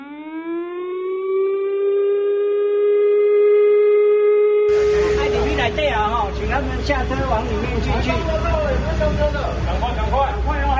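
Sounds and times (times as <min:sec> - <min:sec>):
air-raid drill warning siren wailing: 0:00.0 - 0:08.3
broadband noise burst: 0:04.7 - 0:07.6
speech: 0:06.4 - 0:10.6.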